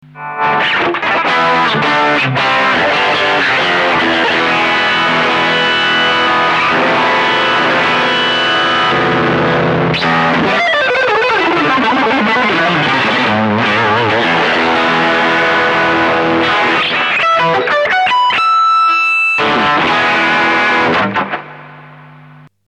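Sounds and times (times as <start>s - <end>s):
electric guitar through clean drive pedal: 0.0s - 22.5s.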